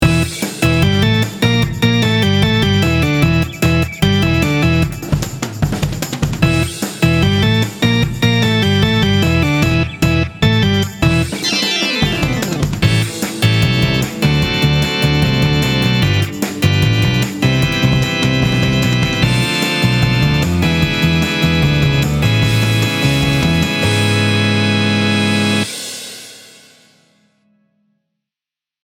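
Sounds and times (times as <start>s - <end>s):
rock music: 0.0s - 26.3s.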